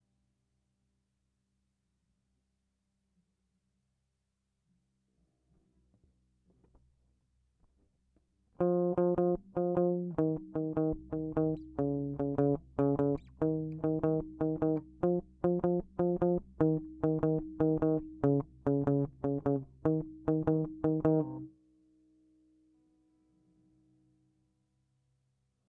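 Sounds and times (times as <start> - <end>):
lead guitar: 8.6 - 21.5.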